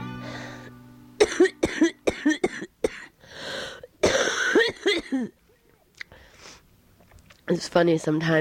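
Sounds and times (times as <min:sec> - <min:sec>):
strained wheezing breath of a person with trouble breathing: 0:00.2 - 0:00.8, 0:03.2 - 0:03.9, 0:06.1 - 0:06.7
harsh forceful coughing fit: 0:01.2 - 0:03.1, 0:04.0 - 0:05.3
speech: 0:07.5 - 0:08.3.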